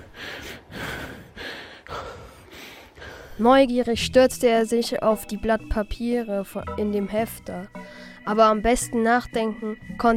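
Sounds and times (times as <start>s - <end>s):
person huffing and panting after running: 0.0s - 3.4s
speech: 3.4s - 10.1s.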